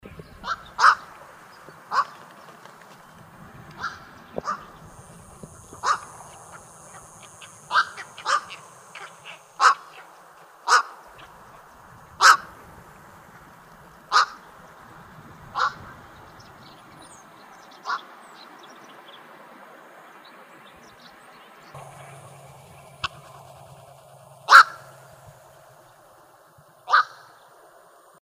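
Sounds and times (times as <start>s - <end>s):
Black-crowned Night Heron calling: 0.4s - 2.3s, 3.7s - 11.6s, 21.8s - 27.4s.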